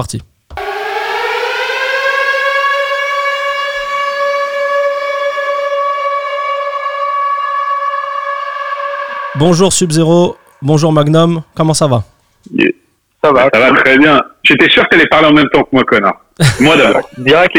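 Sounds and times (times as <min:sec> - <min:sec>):
speech: 0:00.0 - 0:00.3, 0:09.4 - 0:17.5
civil defense lockdown siren wailing: 0:00.5 - 0:11.8, 0:16.4 - 0:17.4
laughter: 0:16.4 - 0:17.5.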